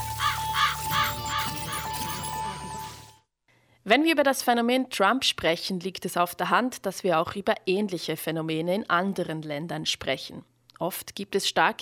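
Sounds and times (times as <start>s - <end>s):
raven cawing and croaking: 0.0s - 2.2s
steady hum and tone: 0.0s - 3.1s
speech: 3.9s - 11.7s.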